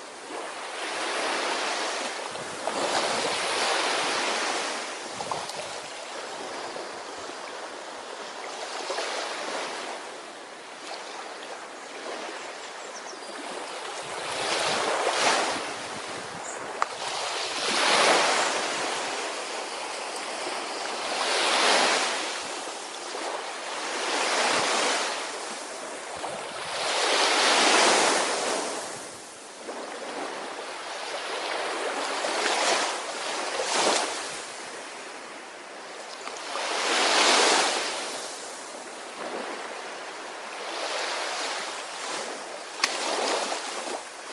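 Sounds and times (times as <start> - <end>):
light wind noise: 0.0 - 44.3
ocean waves rolling in and washing out: 0.0 - 44.3.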